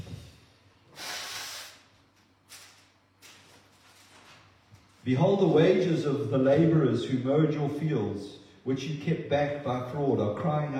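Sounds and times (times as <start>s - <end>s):
person blowing nose: 0.9s - 2.0s
speech: 5.0s - 10.7s.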